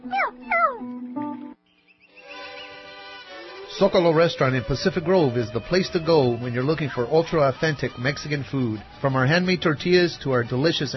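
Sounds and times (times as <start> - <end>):
cat meowing: 0.0 - 0.9
speech: 3.8 - 10.9.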